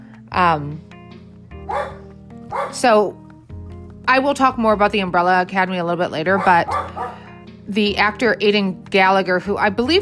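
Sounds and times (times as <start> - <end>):
speech: 0.4 - 0.9, 2.6 - 3.2, 4.1 - 10.0
dog barking: 1.6 - 2.8, 6.3 - 7.3.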